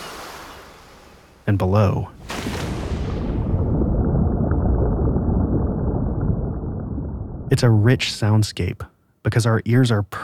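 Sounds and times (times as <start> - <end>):
bright wash of ocean surf: 0.0 - 6.1
speech: 1.5 - 2.8, 7.5 - 10.2
deep underwater ocean rumble: 3.0 - 8.2.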